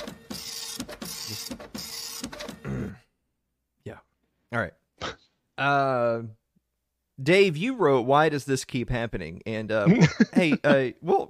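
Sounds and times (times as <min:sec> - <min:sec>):
printer running with a steady high mechanical whir: 0:00.0 - 0:02.6
speech: 0:04.5 - 0:04.8, 0:05.6 - 0:06.4, 0:07.2 - 0:11.2
laughter: 0:09.9 - 0:10.9.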